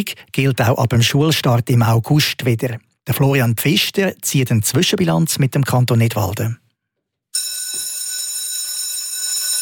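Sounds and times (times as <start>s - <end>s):
speech: 0.0s - 6.6s
school bell ringing: 7.4s - 9.6s.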